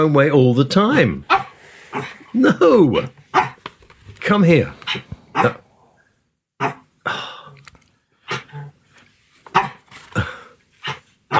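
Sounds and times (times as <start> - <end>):
speech: 0.0 - 1.3, 1.9 - 3.2, 4.2 - 5.6
small female dog grunting and snorting while tugging a squeezy ball: 1.3 - 3.6, 4.8 - 5.8, 8.2 - 8.8, 9.5 - 11.3.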